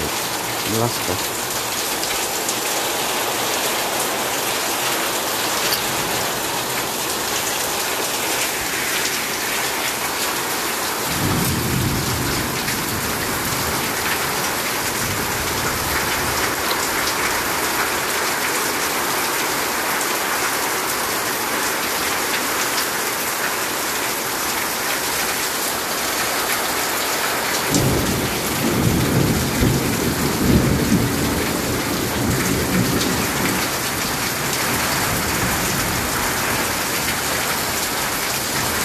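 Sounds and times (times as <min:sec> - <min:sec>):
heavy rain drumming on surfaces: 0:00.0 - 0:38.8
speech: 0:00.7 - 0:01.3.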